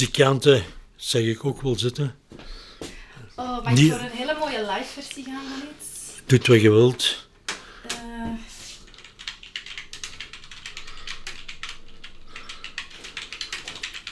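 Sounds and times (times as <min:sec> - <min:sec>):
speech: 0:00.0 - 0:02.2, 0:03.4 - 0:07.2
computer keyboard typing in a radio studio: 0:07.5 - 0:14.1.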